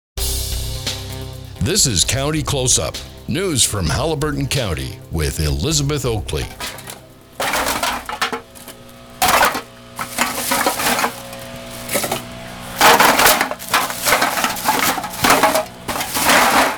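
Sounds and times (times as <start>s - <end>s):
speech: 1.6s - 6.8s
full bag of empty beer and pop cans being crushed: 6.5s - 16.7s.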